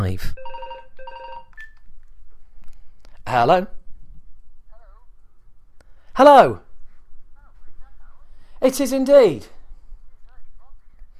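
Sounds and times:
speech: 0:00.0 - 0:00.5, 0:03.3 - 0:03.8, 0:06.2 - 0:06.6, 0:08.6 - 0:09.6
electronic phone ringtone: 0:00.4 - 0:01.6.

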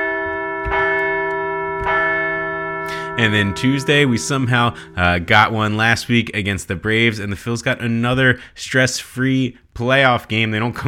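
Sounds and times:
large bell ringing in celebration: 0:00.0 - 0:06.3
speech: 0:03.2 - 0:10.8.

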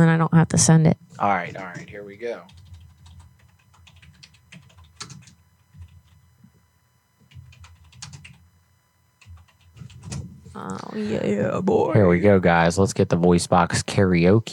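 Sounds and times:
speech: 0:00.0 - 0:02.7, 0:10.6 - 0:14.5
typing on a keyboard: 0:01.8 - 0:06.2, 0:07.3 - 0:08.4, 0:09.2 - 0:10.2.

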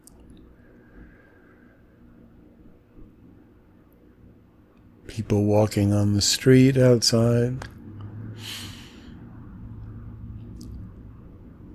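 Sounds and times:
speech: 0:05.1 - 0:07.8
cars passing by as a low rumbling wash of traffic: 0:05.2 - 0:11.7.

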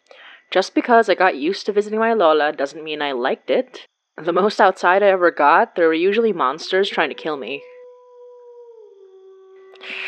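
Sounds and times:
speech: 0:00.5 - 0:07.7
wolf howling: 0:06.6 - 0:10.0.

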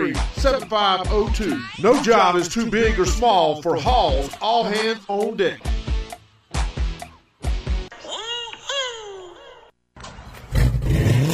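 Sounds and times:
speech: 0:00.0 - 0:05.9
car engine with loud custom exhaust revving: 0:10.3 - 0:11.3.

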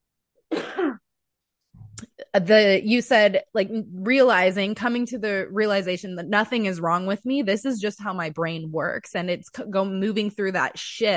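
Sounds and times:
person clearing throat: 0:00.5 - 0:01.1
speech: 0:02.3 - 0:11.1.

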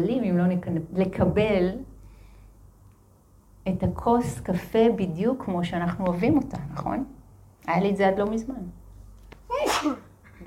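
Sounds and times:
speech: 0:00.0 - 0:01.9, 0:03.6 - 0:08.8, 0:09.5 - 0:10.0
sneeze: 0:09.5 - 0:10.2.

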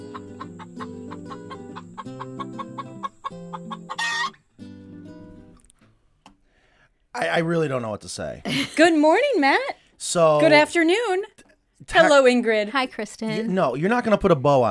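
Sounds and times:
chickens clucking: 0:00.0 - 0:04.5
speech: 0:07.2 - 0:14.6.

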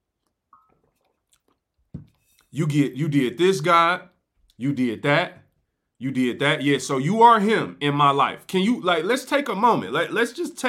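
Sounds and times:
person sipping water: 0:00.0 - 0:02.6
speech: 0:02.5 - 0:05.4, 0:06.0 - 0:10.6.

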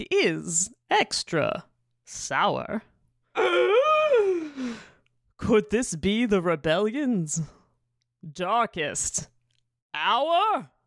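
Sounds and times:
speech: 0:00.0 - 0:03.8, 0:05.4 - 0:07.6, 0:08.2 - 0:09.4, 0:10.0 - 0:10.8
dramatic voiced gasp sliding into a moan: 0:03.4 - 0:05.1.

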